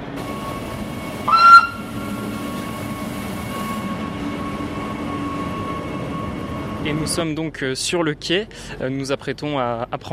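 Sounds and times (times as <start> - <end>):
panoramic rack train rumbling as it sets off toward the summit: 0.0 - 9.9
panoramic rack train whistle: 0.3 - 4.2
speech: 6.8 - 10.1.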